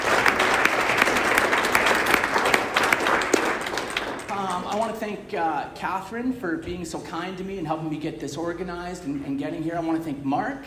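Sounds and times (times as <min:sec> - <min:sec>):
audience applause for an event's organizing committee: 0:00.0 - 0:04.9
speech: 0:05.3 - 0:10.6.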